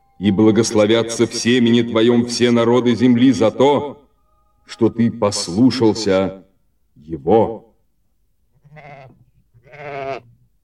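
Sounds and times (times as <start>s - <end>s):
speech: 0.2s - 4.0s, 4.7s - 6.4s, 7.0s - 7.7s
ram bleating while caught by its horns in a thicket: 8.5s - 10.4s.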